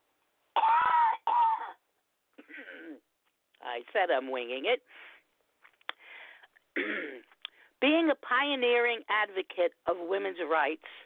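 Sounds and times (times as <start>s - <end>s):
person coughing harshly: 0.6s - 1.8s, 2.4s - 3.0s, 6.8s - 7.3s
speech: 3.7s - 5.1s, 7.8s - 11.0s.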